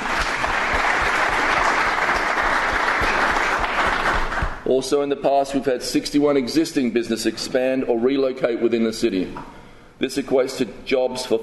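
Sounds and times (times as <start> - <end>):
crowd applauding: 0.0 - 4.7
speech: 4.7 - 11.4.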